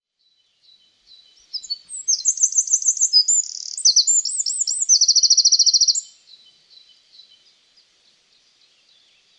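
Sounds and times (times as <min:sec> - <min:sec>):
bird singing high chirps, looping whistles and a rapid trill: 0:00.1 - 0:09.3.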